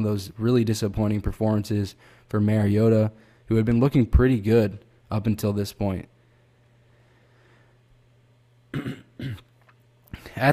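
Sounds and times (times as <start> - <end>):
speech: 0.0 - 6.1
faint steady hum: 0.0 - 10.5
person clearing throat with short rough coughing bursts: 8.7 - 9.6.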